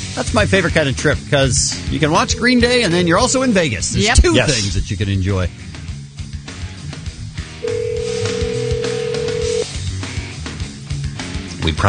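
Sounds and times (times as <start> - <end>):
speech: 0.2 - 5.7, 11.6 - 11.8
telephone ringing: 7.6 - 9.7.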